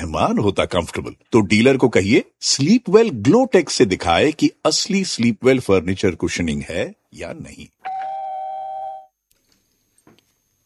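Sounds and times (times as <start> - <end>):
speech: 0.0 - 7.8
electronic phone-line tone as caller joins the call: 7.8 - 9.1.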